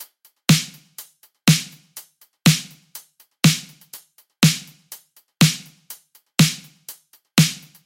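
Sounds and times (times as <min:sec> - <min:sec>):
full drum kit beat: 0:00.0 - 0:07.8.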